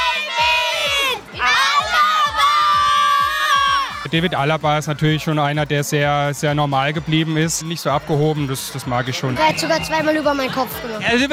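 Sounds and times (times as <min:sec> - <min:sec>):
crowd of children shouting together in unison: 0:00.0 - 0:04.1
speech: 0:04.1 - 0:11.3.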